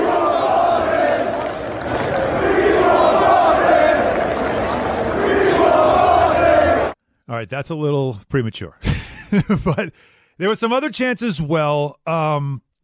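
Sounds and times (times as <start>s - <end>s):
large outdoor street crowd cheering in celebration: 0.0s - 7.0s
speech: 7.5s - 12.6s
laughter: 8.8s - 9.9s.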